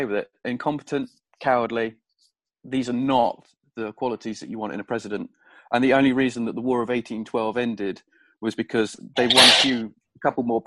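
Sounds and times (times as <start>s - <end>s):
speech: 0.0s - 2.0s, 2.6s - 10.6s
sneeze: 9.2s - 9.8s.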